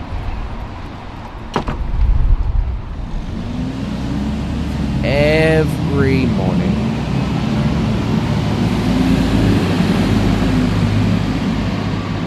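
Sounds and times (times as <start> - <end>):
busy road traffic with cars, trucks and buses: 0.0 - 12.2
sharp clunk: 1.5 - 1.9
person speaking: 5.0 - 6.8.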